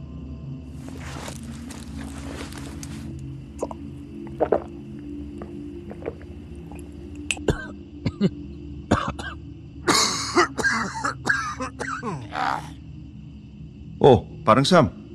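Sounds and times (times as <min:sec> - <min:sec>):
speech: 0:04.4 - 0:04.8, 0:14.1 - 0:15.0
man clearing his throat: 0:07.3 - 0:08.3, 0:08.9 - 0:12.7
man coughing: 0:07.3 - 0:08.3, 0:08.9 - 0:12.7.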